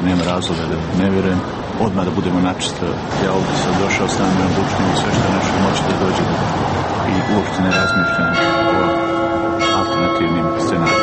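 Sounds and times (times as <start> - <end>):
speech: 0.3 - 9.0
church bell ringing at noon: 7.1 - 11.0.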